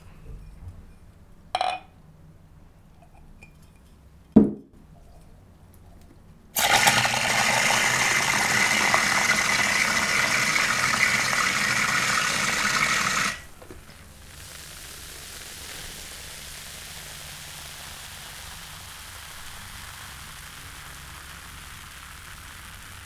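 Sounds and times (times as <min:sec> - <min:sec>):
soda water being made: 0:06.6 - 0:14.8.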